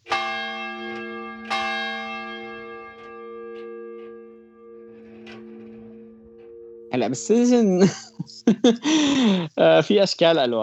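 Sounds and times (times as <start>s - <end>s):
distant church bell ringing the hour: 0.0s - 9.3s
speech: 7.0s - 10.6s
laughter: 7.1s - 10.0s.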